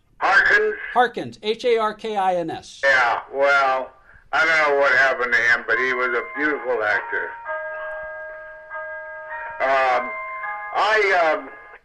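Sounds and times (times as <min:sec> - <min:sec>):
speech: 0:00.6 - 0:07.4, 0:10.8 - 0:11.6
clock chiming: 0:05.2 - 0:11.8.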